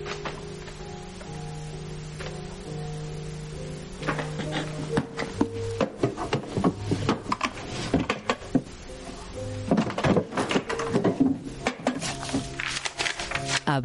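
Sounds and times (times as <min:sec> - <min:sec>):
papers and documents being opened: 0:00.0 - 0:00.8, 0:04.0 - 0:08.8, 0:09.6 - 0:13.8
faint steady musical hum: 0:00.0 - 0:13.8
desk drawers opening and closing in a school director's office: 0:04.0 - 0:13.6.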